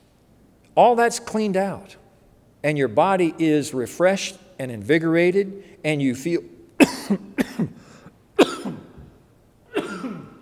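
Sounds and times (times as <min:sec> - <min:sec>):
speech: 0:00.8 - 0:02.0, 0:02.6 - 0:07.9
person coughing from a tickle in the throat: 0:06.8 - 0:10.4.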